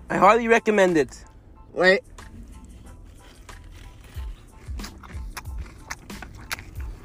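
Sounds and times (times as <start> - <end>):
speech: 0.1 - 2.2
crunchy piping-hot finger food being bitten and chewed: 2.2 - 7.0.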